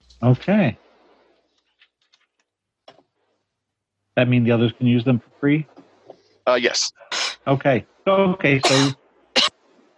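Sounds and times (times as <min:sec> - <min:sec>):
speech: 0:00.2 - 0:00.8, 0:04.2 - 0:05.8, 0:06.4 - 0:09.0
person coughing: 0:08.6 - 0:09.5.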